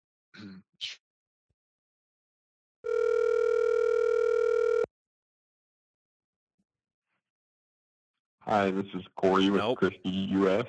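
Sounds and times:
telephone line steady buzzing tone: 2.8 - 4.9
speech: 8.5 - 10.6.

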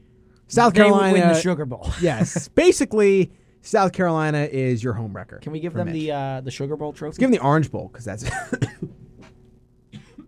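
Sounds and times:
faint low hum: 0.0 - 10.2
speech: 0.5 - 8.9
coughing: 8.2 - 10.2.

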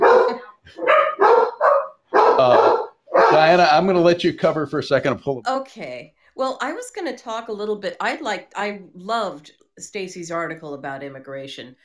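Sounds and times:
dogs barking loudly at a daughter-in-law: 0.0 - 3.8
speech: 2.4 - 2.7, 3.4 - 11.8.

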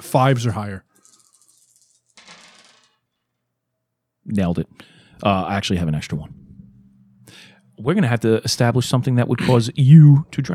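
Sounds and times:
speech: 0.0 - 0.9, 4.3 - 6.4, 7.8 - 10.5
five dice clattering onto a hard tabletop: 1.0 - 3.0.

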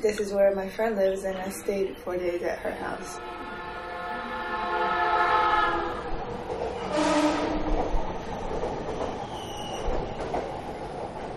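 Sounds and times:
speech: 0.0 - 3.5
train running on rails to Kamogawa Station in Chiba Japan: 0.0 - 11.3
sustained horn-like tone: 3.1 - 6.0, 6.9 - 7.6.

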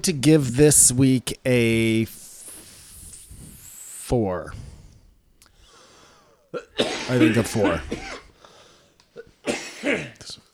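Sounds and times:
speech: 0.0 - 2.2, 4.1 - 4.7, 6.5 - 8.2
person coughing in short harsh bursts: 6.5 - 8.4, 9.2 - 10.4.

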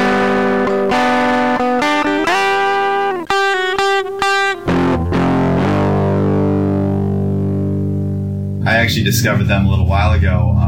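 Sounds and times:
distorted electric guitar chords and riff in a podcast sting: 0.0 - 10.6
speech: 8.9 - 10.6.

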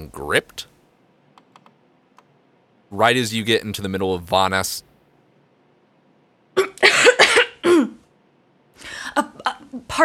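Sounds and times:
speech: 0.0 - 0.7, 2.9 - 4.9
harsh coughing: 6.6 - 8.0.

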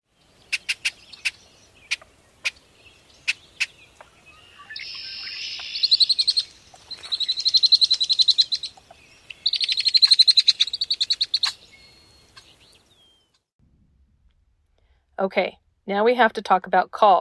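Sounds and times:
red-winged blackbird buzzy trills: 3.2 - 13.4
speech: 15.2 - 17.2.

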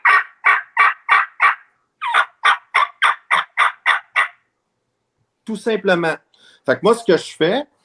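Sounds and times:
turkey yelps made on a mouth diaphragm call: 0.0 - 4.5
speech: 5.5 - 7.7.

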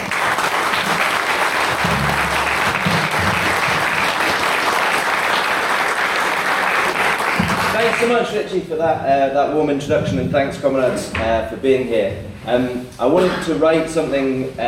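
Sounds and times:
audience applause: 0.0 - 8.2
speech: 8.0 - 14.6.

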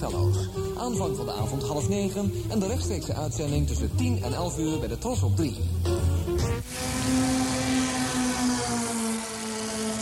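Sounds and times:
speech: 0.0 - 6.0
MG car engine droning: 6.6 - 10.0.

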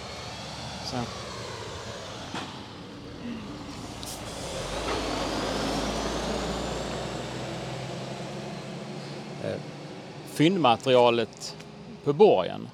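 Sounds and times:
heavy truck passing by: 0.0 - 12.7
speech: 0.9 - 1.3, 9.4 - 9.8, 10.4 - 12.7
air brake hiss: 3.4 - 4.7.

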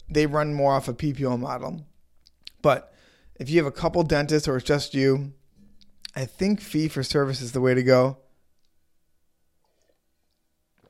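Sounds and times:
speech: 0.1 - 1.9, 2.6 - 5.4, 6.1 - 8.2
soft wet mouth clicks: 2.2 - 2.6, 5.8 - 6.2
person sipping coffee: 9.6 - 10.8.

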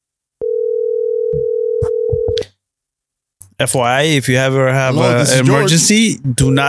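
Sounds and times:
telephone ringback tone during an outgoing call: 0.4 - 2.4
speech: 3.6 - 6.6.

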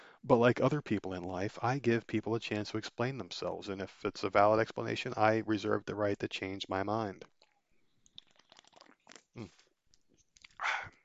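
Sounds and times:
speech: 0.2 - 7.3, 9.4 - 9.6
person sipping a drink: 7.4 - 9.7
slurping sip: 8.0 - 9.6.

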